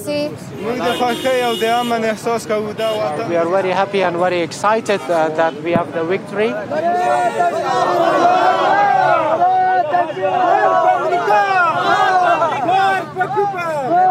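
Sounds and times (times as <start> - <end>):
speech: 0.0 - 14.0
large crowd chanting religious slogans outdoors in front of the U.S. Embassy in Kabul: 5.8 - 14.0.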